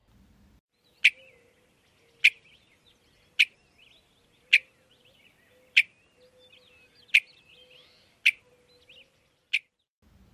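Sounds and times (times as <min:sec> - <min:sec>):
western meadowlark giving sharp bell-like call notes: 0:00.9 - 0:09.8.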